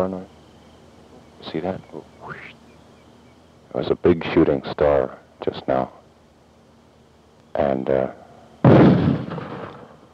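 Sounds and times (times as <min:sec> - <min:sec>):
speech: 0:00.0 - 0:00.4, 0:01.4 - 0:02.6, 0:03.7 - 0:06.0, 0:07.6 - 0:09.4
mortar firing: 0:08.6 - 0:10.0.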